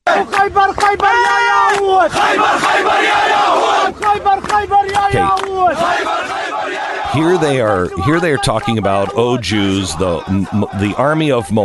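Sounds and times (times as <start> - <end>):
large crowd chanting threats in unison: 0.0 - 11.2
laughter: 7.1 - 11.6
speech: 7.2 - 11.6.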